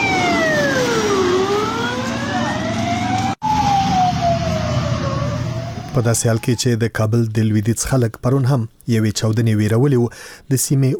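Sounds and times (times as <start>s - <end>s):
ambulance sirens passing near a bus stop in Kabul: 0.0s - 6.8s
speech: 6.0s - 10.9s.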